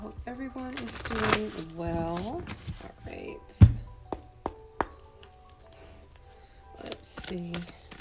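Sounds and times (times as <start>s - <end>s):
speech: 0.2s - 3.7s, 7.3s - 7.8s
deck of cards being shuffled by hand: 0.6s - 3.0s, 6.8s - 7.9s.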